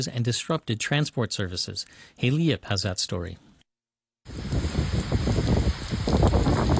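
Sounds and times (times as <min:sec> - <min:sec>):
speech: 0:00.0 - 0:03.5
faint gusting wind: 0:04.3 - 0:06.7
heavy torrential rain pouring on cities in the Chiba region of Japan: 0:04.3 - 0:06.7.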